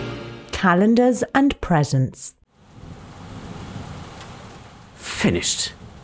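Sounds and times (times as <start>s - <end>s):
speech: 0.6s - 2.4s, 5.2s - 5.8s
steady rain: 2.5s - 6.0s.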